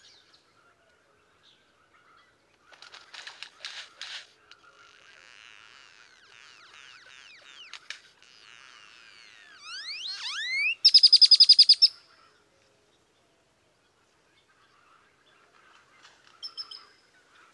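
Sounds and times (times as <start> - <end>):
great-tailed grackle song: 2.8 - 12.1.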